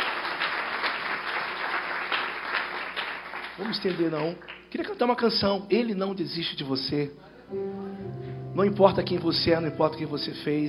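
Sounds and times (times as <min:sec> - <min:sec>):
large crowd applauding: 0:00.0 - 0:04.7
speech: 0:03.6 - 0:10.6.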